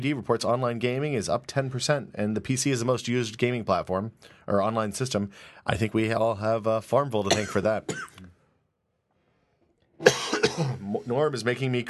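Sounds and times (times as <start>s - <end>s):
speech: 0.0s - 8.3s, 10.0s - 11.8s
person coughing: 7.3s - 8.3s, 10.0s - 10.9s.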